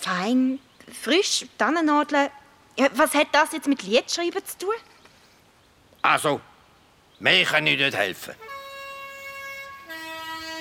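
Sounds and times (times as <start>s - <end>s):
speech: 0.1s - 4.9s, 6.0s - 6.5s, 7.2s - 8.5s
two-tone bus horn blast: 8.4s - 10.6s.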